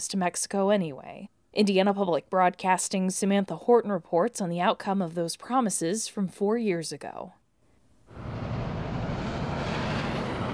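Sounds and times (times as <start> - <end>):
speech: 0.0 - 7.4
cars and heavier trucks rushing past on a busy road: 8.2 - 10.5.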